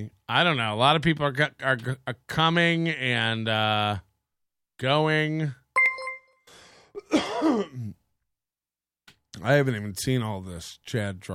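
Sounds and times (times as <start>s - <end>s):
speech: 0.0s - 4.1s, 4.8s - 5.6s, 7.0s - 8.0s, 9.4s - 11.3s
rough cough trailing into raspy throaty rumble: 7.0s - 8.0s.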